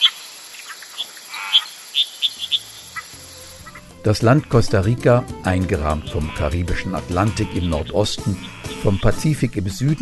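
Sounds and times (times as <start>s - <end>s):
sharp chirping frog calls in a swamp: 0.0s - 4.9s, 7.1s - 9.1s
steady high insect drone in a swamp: 0.0s - 9.0s
speech: 4.0s - 10.0s.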